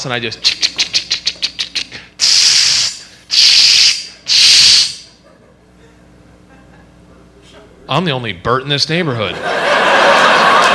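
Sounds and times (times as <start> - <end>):
speech: 0.0 - 0.8, 7.9 - 10.2
voice imitating a spray paint can rattling and hissing: 0.4 - 5.0
laughter: 5.1 - 7.3, 9.3 - 10.7.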